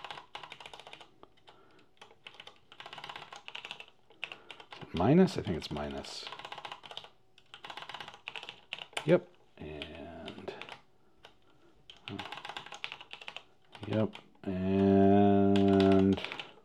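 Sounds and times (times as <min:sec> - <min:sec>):
computer keyboard typing clicks: 0:00.0 - 0:16.6
speech: 0:04.9 - 0:06.4, 0:09.0 - 0:09.3, 0:13.9 - 0:14.9.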